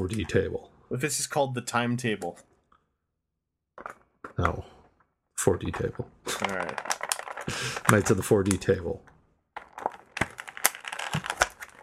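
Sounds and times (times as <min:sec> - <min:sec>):
speech: 0:00.0 - 0:02.5, 0:03.8 - 0:04.8, 0:05.4 - 0:09.1
action figure pushed back into plastic blister card packaging: 0:06.3 - 0:11.8.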